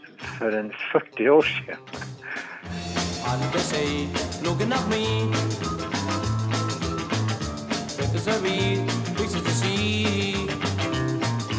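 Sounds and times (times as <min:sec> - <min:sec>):
1960s pop band playing upbeat vintage-sounding pop tune with bass, drums and guitars: 0:00.0 - 0:00.8, 0:01.4 - 0:11.5
speech: 0:00.4 - 0:02.4, 0:03.3 - 0:05.7, 0:08.0 - 0:10.6.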